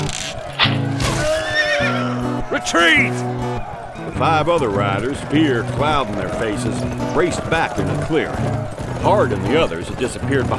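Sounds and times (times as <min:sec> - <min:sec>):
horse neighing: 0:00.6 - 0:02.4
speech: 0:02.6 - 0:03.4, 0:04.2 - 0:10.5.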